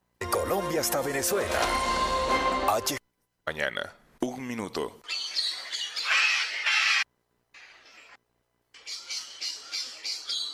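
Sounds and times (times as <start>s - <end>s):
speech: 0.5s - 5.2s
bird giving harsh raspy squawks: 5.0s - 8.2s, 8.8s - 10.5s.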